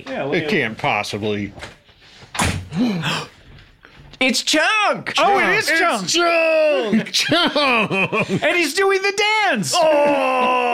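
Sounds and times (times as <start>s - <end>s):
speech: 0.0s - 1.8s, 2.8s - 3.3s, 4.2s - 10.7s
door banging open: 2.3s - 2.8s
laughter: 6.7s - 8.8s, 9.7s - 10.7s.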